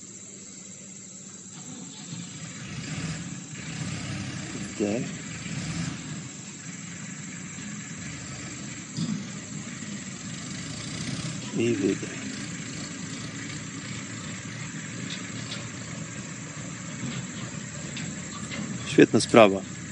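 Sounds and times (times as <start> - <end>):
truck engine starting and idling: 1.1 - 19.9
speech: 4.8 - 5.2, 11.6 - 12.2, 19.0 - 19.8.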